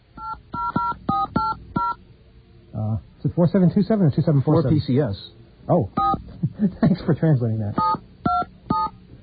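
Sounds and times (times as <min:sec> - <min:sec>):
touch-tone keypad beeps of a phone number being dialed: 0:00.2 - 0:02.0, 0:06.0 - 0:06.2, 0:07.8 - 0:08.9
speech: 0:03.4 - 0:08.0.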